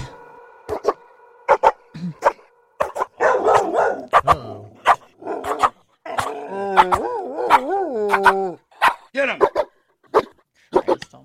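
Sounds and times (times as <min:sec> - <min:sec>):
dog howling: 0:00.0 - 0:08.7
dog barking: 0:00.7 - 0:11.0.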